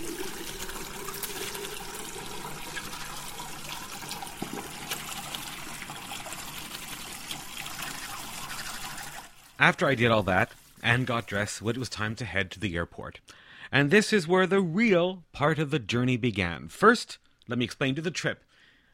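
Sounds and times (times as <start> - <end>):
shower water running: 0.0 - 12.2
speech: 9.6 - 18.5.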